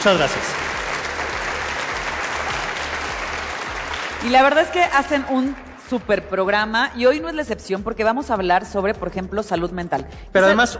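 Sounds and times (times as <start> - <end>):
speech: 0.0 - 0.7, 4.2 - 10.7
audience applause: 0.0 - 5.9.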